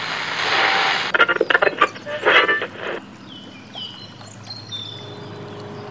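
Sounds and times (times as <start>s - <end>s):
boat moving through water in the countryside: 1.1s - 5.8s
faint birdsong: 1.1s - 5.8s.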